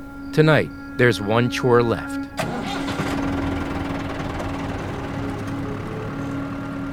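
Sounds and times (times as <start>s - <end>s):
speech: 0.4s - 2.3s
farm tractor engine idling with mechanical rattle: 2.3s - 6.9s.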